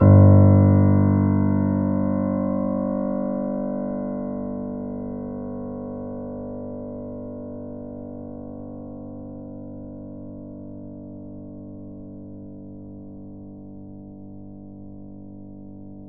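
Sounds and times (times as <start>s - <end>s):
grand piano G0 note played mf: 0.0s - 3.6s.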